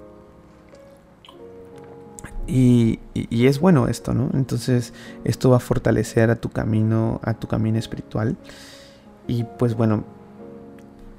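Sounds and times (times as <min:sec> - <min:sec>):
person sipping water: 0:00.5 - 0:02.4
speech: 0:02.2 - 0:10.2.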